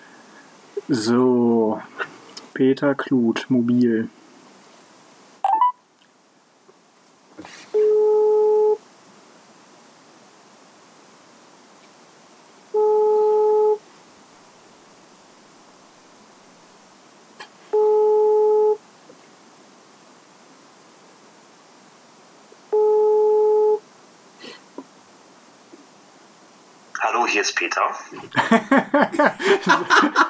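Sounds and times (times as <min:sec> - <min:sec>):
speech: 0:00.8 - 0:04.2, 0:27.4 - 0:30.2
telephone ringback tone while calling a mobile phone: 0:07.4 - 0:11.2, 0:12.6 - 0:14.2, 0:17.7 - 0:23.9
laughter: 0:28.1 - 0:30.2.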